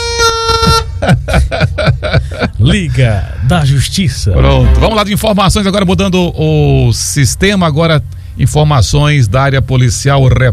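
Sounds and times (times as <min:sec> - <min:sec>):
horn sound effect honking and tooting: 0:00.0 - 0:01.0, 0:04.5 - 0:05.3
laughter: 0:00.5 - 0:02.8
speech: 0:02.7 - 0:10.5.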